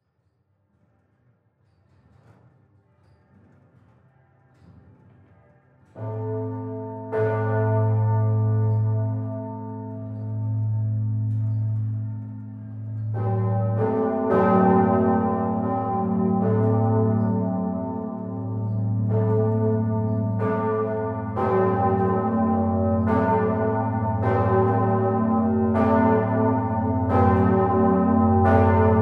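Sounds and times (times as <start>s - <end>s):
north tower bells of the town parish church ringing: 6.0s - 29.0s.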